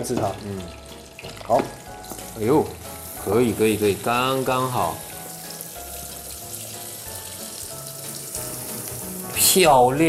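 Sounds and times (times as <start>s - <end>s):
speech: 0.0s - 1.8s, 2.4s - 5.1s, 9.5s - 10.0s
hot frying oil bubbling and sizzling in a pot: 0.0s - 10.0s.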